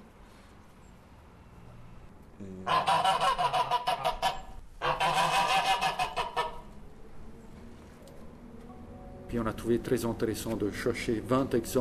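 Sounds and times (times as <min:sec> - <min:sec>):
speech: 0:02.4 - 0:04.1, 0:09.3 - 0:11.7
geese honking: 0:02.7 - 0:06.8.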